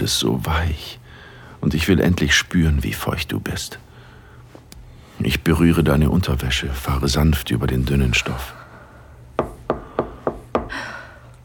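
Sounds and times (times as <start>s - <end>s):
speech: 0.0s - 1.0s, 1.6s - 3.8s, 5.2s - 8.6s
soft hiss: 0.0s - 9.7s
knocking on a wooden door: 9.4s - 10.7s.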